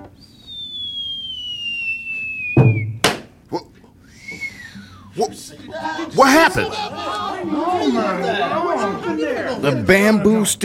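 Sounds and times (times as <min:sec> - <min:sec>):
brief arching whistle: 0:00.0 - 0:03.2, 0:04.1 - 0:05.1
whistle of a blazing fast-pitched ball: 0:00.0 - 0:03.3, 0:04.2 - 0:04.8
heavy thump: 0:02.6 - 0:03.3
small knock: 0:02.6 - 0:03.3
sharp crack: 0:02.8 - 0:03.4
laughter: 0:05.2 - 0:09.9
speech: 0:05.2 - 0:10.6.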